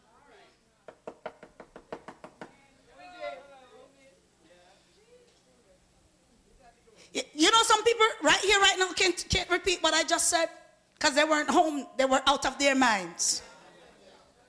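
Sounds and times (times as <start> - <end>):
sharp knocks on a hard wooden surface: 0.9 - 2.6
speech: 8.4 - 13.5.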